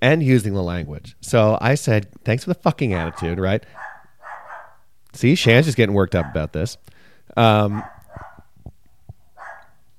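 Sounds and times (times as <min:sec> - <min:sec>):
speech: 0:00.0 - 0:03.9, 0:05.2 - 0:08.3
faint scattered noises: 0:02.1 - 0:09.9
dog barking: 0:02.9 - 0:04.9, 0:06.1 - 0:06.5, 0:07.6 - 0:08.5, 0:09.4 - 0:09.8.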